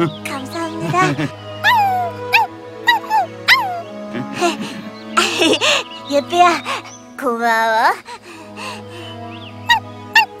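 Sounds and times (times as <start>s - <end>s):
speech: 0.0s - 0.2s, 0.8s - 1.4s, 6.1s - 8.1s
laughter: 0.0s - 1.9s, 4.1s - 6.0s
small dog whimpering and yipping: 1.6s - 3.8s.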